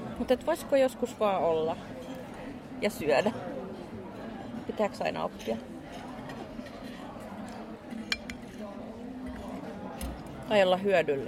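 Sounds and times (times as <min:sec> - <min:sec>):
murmur of overlapping conversation in a busy lunchtime restaurant: 0:00.0 - 0:11.2
speech: 0:00.2 - 0:02.0, 0:02.8 - 0:03.5, 0:04.7 - 0:05.7, 0:10.5 - 0:11.2
dishes and cutlery clinking in a restaurant: 0:01.9 - 0:02.3, 0:05.4 - 0:10.3.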